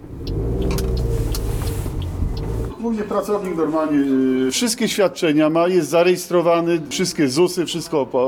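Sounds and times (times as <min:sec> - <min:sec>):
car engine rumbling at an auto repair shop: 0:00.0 - 0:02.8
speech: 0:02.9 - 0:08.2.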